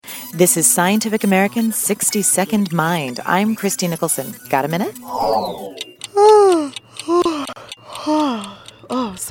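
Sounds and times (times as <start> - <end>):
speech: 0.3 - 7.2
person yawning with breathy groaning swells: 5.1 - 7.4.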